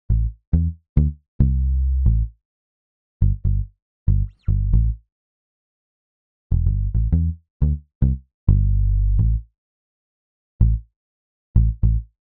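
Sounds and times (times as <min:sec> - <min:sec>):
island reggae bass: 0:00.1 - 0:02.3, 0:03.2 - 0:05.0, 0:06.5 - 0:09.4, 0:11.6 - 0:12.1.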